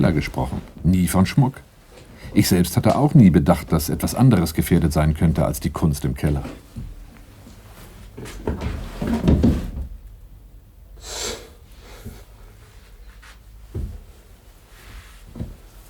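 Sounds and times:
speech: 0.0s - 1.7s, 2.3s - 6.6s
drawers being yanked open in a search: 8.2s - 10.0s.

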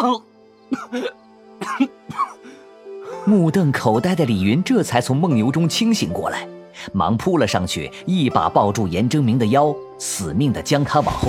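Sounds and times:
speech: 0.0s - 2.4s, 3.2s - 11.2s
man coughing violently after being punched: 0.7s - 2.4s.

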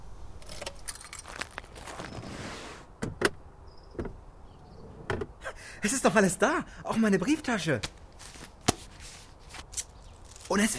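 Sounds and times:
car keys jangling in the ignition of a parked car: 0.4s - 1.7s
speech: 5.8s - 8.0s, 10.5s - 10.7s.

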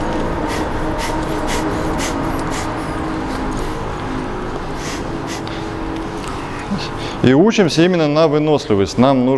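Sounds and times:
rapid breathing during a breathing-exercise warm-up: 0.0s - 5.9s
low hum: 0.0s - 8.5s
speech: 7.2s - 9.3s.

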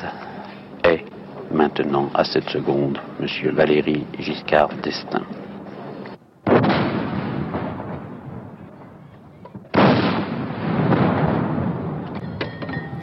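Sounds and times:
speech: 1.6s - 5.4s
artillery cannon fire from a 21-gun salute in Paris: 6.4s - 8.7s, 9.6s - 12.3s.

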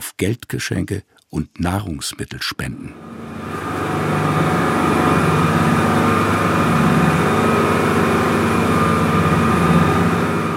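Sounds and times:
speech: 0.0s - 3.2s
640-horsepower motorboat engine speeding across the Atlantic off St Kilda: 2.9s - 10.5s.

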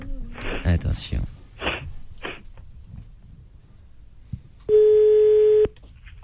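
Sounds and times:
speech: 0.7s - 1.4s
telephone tone of a call placed to a mobile phone: 4.7s - 5.8s.

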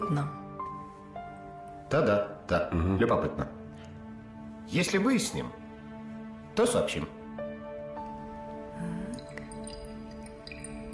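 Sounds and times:
speech: 0.1s - 0.4s, 1.9s - 3.6s, 4.7s - 5.6s, 6.6s - 7.2s
faint drips: 8.0s - 10.9s
alcohol being poured into a wine glass: 8.2s - 10.9s.

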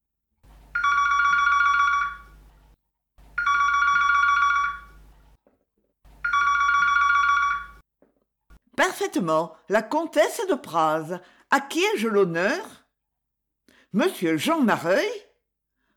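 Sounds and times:
telephone electric bell trill ringing: 0.7s - 2.4s, 3.4s - 5.1s, 6.2s - 7.8s
speech: 9.1s - 12.8s, 13.9s - 15.2s.

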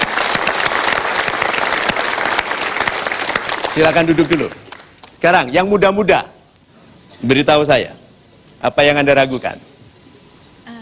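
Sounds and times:
audience applause at a motivational seminar: 0.0s - 5.2s
speech: 3.7s - 4.6s, 5.2s - 6.3s, 7.2s - 8.0s, 8.6s - 9.7s.

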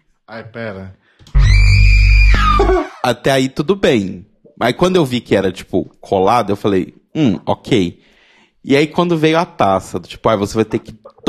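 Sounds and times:
speech: 0.3s - 1.2s, 2.4s - 11.2s
processed distorted scream sound effect: 1.3s - 2.9s.

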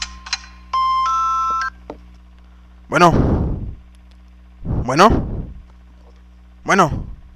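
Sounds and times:
mobile phone ringtone: 0.8s - 1.7s
speech: 2.9s - 3.5s, 4.9s - 5.4s, 6.7s - 7.1s.

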